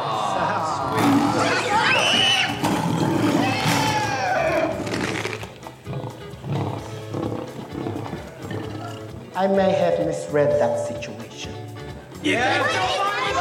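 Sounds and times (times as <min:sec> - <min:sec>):
lion roaring with rough growls: 0:00.6 - 0:09.4
lion rumbling snarls: 0:00.7 - 0:09.4
speech: 0:09.4 - 0:11.2, 0:12.2 - 0:13.0.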